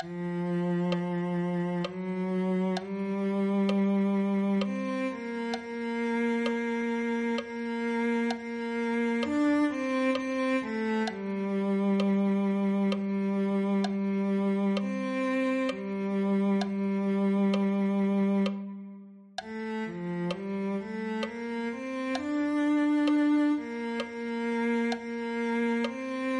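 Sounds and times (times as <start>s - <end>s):
cello: 0.0s - 26.3s.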